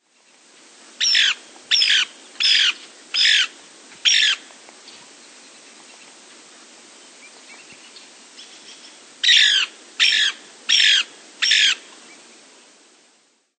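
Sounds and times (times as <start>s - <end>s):
Lewis's Woodpecker calls: 1.0s - 4.4s, 7.5s - 11.8s.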